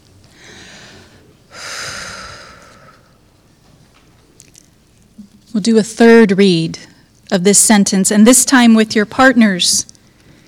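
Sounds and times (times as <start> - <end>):
deep breath: 0.3 - 3.2
speech: 5.6 - 9.9.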